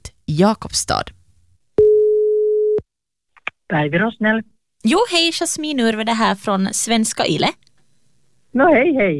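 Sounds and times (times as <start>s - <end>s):
speech: 0.3s - 1.2s, 3.7s - 7.6s, 8.5s - 9.1s
electronic telephone ringback tone: 1.8s - 2.8s.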